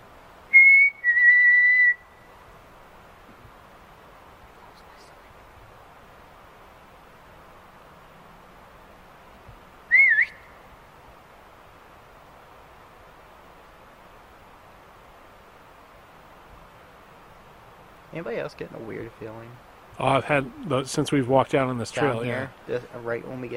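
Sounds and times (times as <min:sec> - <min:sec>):
faint ambient hiss: 0:00.0 - 0:23.5
person whistling outdoors on a trail: 0:00.5 - 0:02.0, 0:09.9 - 0:10.4
speech: 0:18.1 - 0:23.5.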